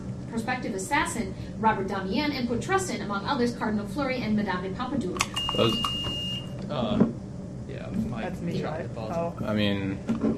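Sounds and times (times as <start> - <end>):
speech: 0.3 - 6.0, 6.7 - 7.1, 8.2 - 10.3
thin high electronic quiz buzzer beep: 5.3 - 6.6.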